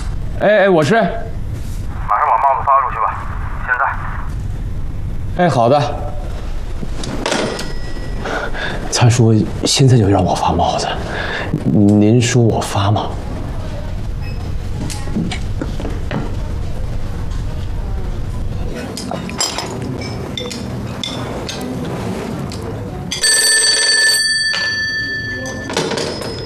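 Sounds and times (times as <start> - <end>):
low busy rumble: 0.0 - 23.2
voices: 0.3 - 7.6, 8.2 - 23.2
speech: 0.4 - 1.3, 5.4 - 6.1, 8.9 - 13.2
telephone bell ringing: 7.4 - 8.3, 23.1 - 26.4.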